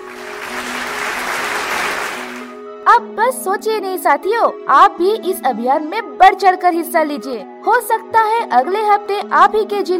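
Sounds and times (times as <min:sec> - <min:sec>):
crowd applauding: 0:00.0 - 0:02.6
speech: 0:02.9 - 0:09.9.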